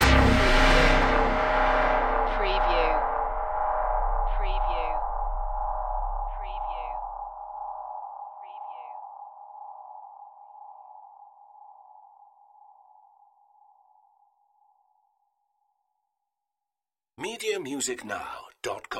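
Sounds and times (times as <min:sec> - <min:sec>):
sci-fi hit: 0:00.0 - 0:07.4.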